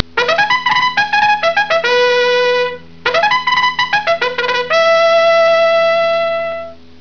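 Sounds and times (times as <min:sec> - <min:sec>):
trumpet call: 0:00.1 - 0:06.8.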